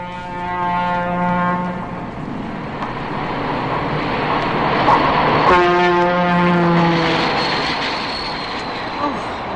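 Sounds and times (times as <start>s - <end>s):
train horn blaring: 0.0s - 2.2s, 5.4s - 7.6s
Pennsylvania Railroad train passing next to an apartment behind a grocery store: 0.0s - 9.5s.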